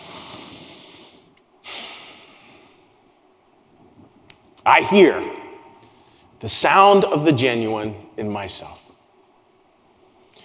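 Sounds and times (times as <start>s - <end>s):
sharp breath intake: 0.0s - 2.8s
person breathing: 0.0s - 2.9s, 5.8s - 6.4s
speech: 4.7s - 5.4s, 6.4s - 8.8s.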